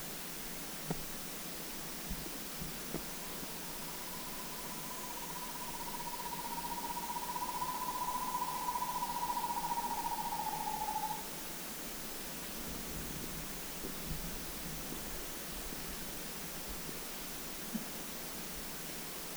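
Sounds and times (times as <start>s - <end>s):
steady background hiss: 0.2s - 19.3s
Asian barred owlet subspecies whitelyi song in Da Yao Shan Guangxi China: 3.1s - 11.5s.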